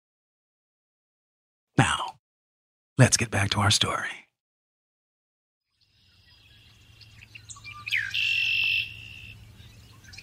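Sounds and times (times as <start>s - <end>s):
speech: 3.0s - 4.2s
red-winged blackbird singing a buzzy trill: 5.7s - 10.2s.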